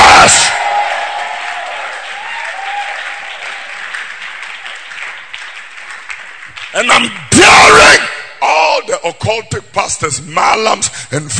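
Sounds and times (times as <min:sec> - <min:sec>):
audience clapping hands: 0:00.0 - 0:07.2
speech: 0:06.8 - 0:08.0, 0:08.8 - 0:11.3.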